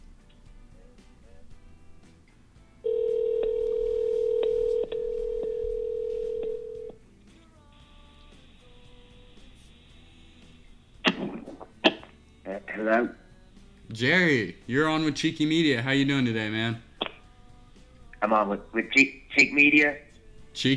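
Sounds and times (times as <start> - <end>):
telephone touch tones dialing a number: 2.9 - 7.0
speech: 14.0 - 16.9, 18.2 - 20.0, 20.6 - 20.7.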